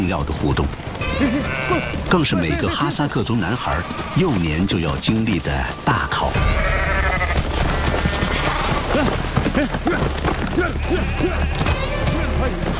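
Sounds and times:
speech: 0:00.1 - 0:06.6, 0:09.0 - 0:11.8, 0:12.4 - 0:12.7
sheep bleating as herders catch them at a winter-pasture slaughter: 0:01.0 - 0:02.9, 0:03.5 - 0:04.6, 0:06.3 - 0:09.2, 0:09.8 - 0:12.6.

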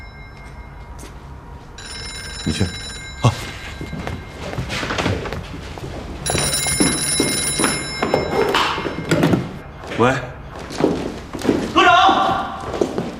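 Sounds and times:
telephone ringing with a bright electronic trill: 0:00.0 - 0:09.6
room noise: 0:00.0 - 0:13.1
speech: 0:02.5 - 0:03.5, 0:10.0 - 0:10.3.

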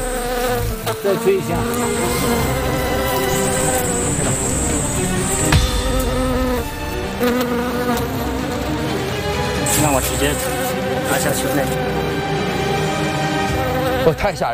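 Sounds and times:
wild bees buzzing as smoke drives them from nest: 0:00.0 - 0:14.2
speech: 0:01.0 - 0:02.8, 0:10.0 - 0:12.3, 0:14.0 - 0:14.5.

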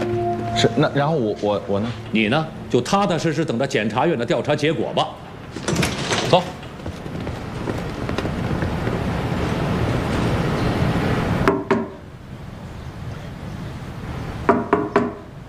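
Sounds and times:
speech: 0:00.6 - 0:05.7, 0:06.3 - 0:06.6
steady rain-like hiss: 0:01.0 - 0:14.6
police knocking on a wooden door: 0:14.5 - 0:15.2.

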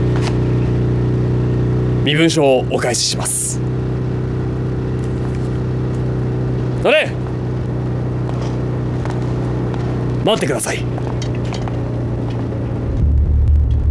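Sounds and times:
army military police special unit car engine idling: 0:00.0 - 0:13.8
speech: 0:02.1 - 0:03.9, 0:06.8 - 0:07.2, 0:10.3 - 0:11.0.

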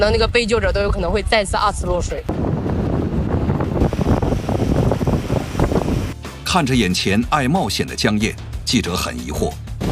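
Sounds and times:
speech: 0:00.0 - 0:02.5, 0:06.5 - 0:09.6
heavy wind buffeting the microphone: 0:00.0 - 0:06.2, 0:09.8 - 0:09.9
rough sea water surging and splashing: 0:02.6 - 0:06.2.

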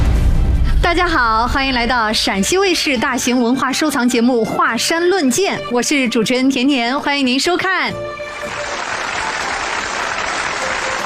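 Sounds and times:
speech: 0:00.9 - 0:08.2
studio audience applause: 0:08.2 - 0:11.0.

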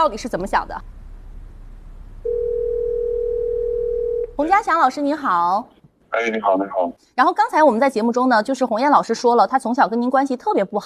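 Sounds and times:
speech: 0:00.0 - 0:01.0, 0:04.4 - 0:10.8
steady unbroken telephone tone while placing a call: 0:02.2 - 0:04.4.

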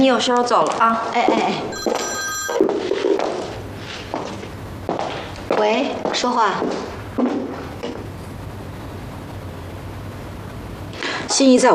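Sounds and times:
speech: 0:00.0 - 0:02.1, 0:05.6 - 0:07.3, 0:11.3 - 0:11.7
movement sounds: 0:00.3 - 0:08.5
telephone ringing with a bright electronic tone: 0:01.7 - 0:03.5.

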